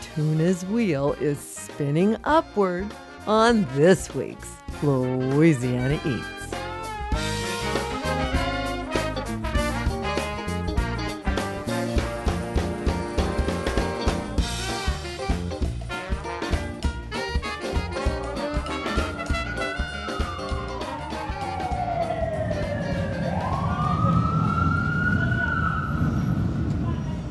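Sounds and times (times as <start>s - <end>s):
rhythmic music: 0.0s - 21.9s
speech: 0.2s - 6.4s
wailing siren: 19.2s - 26.7s
busy six-lane street traffic with streetcars on Canal Street in New Orleans: 21.0s - 27.3s.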